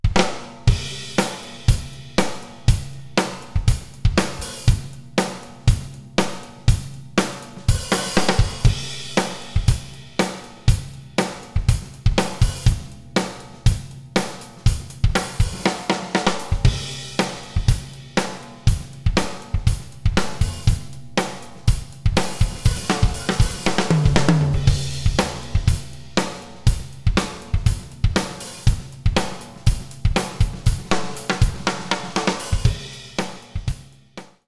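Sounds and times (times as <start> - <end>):
vintage fat drums with plate reverb: 0.0 - 34.4.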